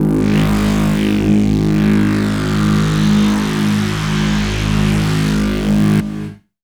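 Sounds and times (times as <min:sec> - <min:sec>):
mutated bass: 0:00.0 - 0:06.4.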